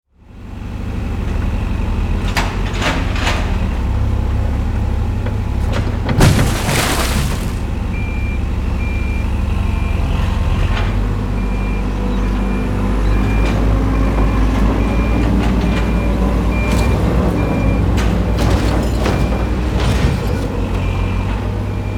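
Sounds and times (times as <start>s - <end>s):
bulldozer demolition: 0.1s - 21.9s
demolition debris impacts: 5.5s - 7.9s.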